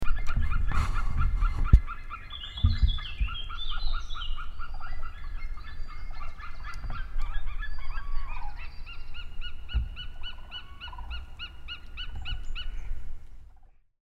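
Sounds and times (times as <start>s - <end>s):
white-tailed eagle Haliaeetus albicilla: 0.0s - 13.8s.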